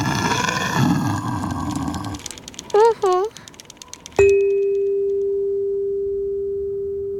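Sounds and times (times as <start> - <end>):
polar bear deep rumbling roar: 0.0 - 2.3
single bright chime: 4.2 - 7.1.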